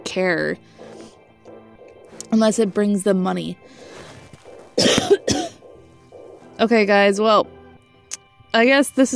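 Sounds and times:
speech: 0:00.2 - 0:00.9, 0:02.3 - 0:03.9, 0:06.6 - 0:07.6, 0:08.5 - 0:09.1
person coughing harshly: 0:04.8 - 0:05.6.

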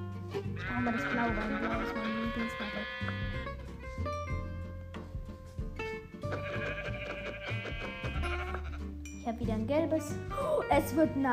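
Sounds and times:
yellow sheep bleating in a video game: 0:00.6 - 0:03.6, 0:06.3 - 0:08.9
speech: 0:00.8 - 0:04.1, 0:09.4 - 0:11.3
steady video game music with low bass tones: 0:03.0 - 0:11.3.

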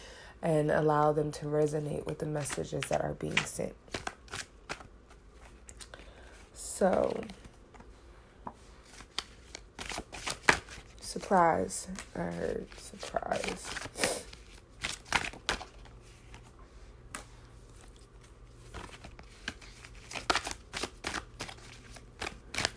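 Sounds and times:
speech: 0:00.4 - 0:04.0, 0:06.8 - 0:07.4, 0:11.1 - 0:14.1
deck of tarot cards shuffled and riffled: 0:02.4 - 0:07.9, 0:08.8 - 0:11.1, 0:11.8 - 0:16.5, 0:17.1 - 0:22.7.

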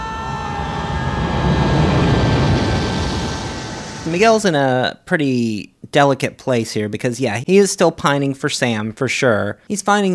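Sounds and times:
airplane passing low overhead: 0:00.0 - 0:04.4
speech: 0:04.1 - 0:10.1.

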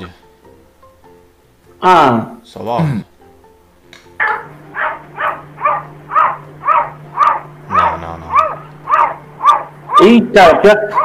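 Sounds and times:
speech: 0:01.8 - 0:03.1, 0:10.0 - 0:11.0
cat making short rough bark-like calls: 0:04.2 - 0:11.0.

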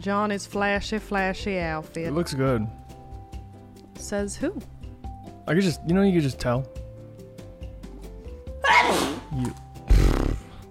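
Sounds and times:
speech: 0:00.0 - 0:02.8, 0:04.0 - 0:04.8, 0:05.5 - 0:06.8, 0:09.4 - 0:09.6
hard forceful sneeze: 0:08.6 - 0:10.6.

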